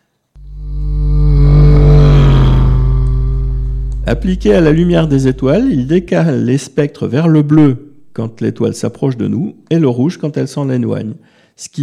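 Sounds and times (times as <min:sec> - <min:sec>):
vehicle engine droning: 0:00.4 - 0:06.2, 0:07.7 - 0:09.1
speech: 0:04.1 - 0:11.8.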